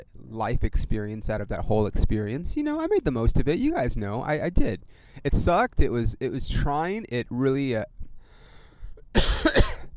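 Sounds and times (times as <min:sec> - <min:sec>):
speech: 0:00.0 - 0:08.0
person coughing: 0:09.1 - 0:09.9.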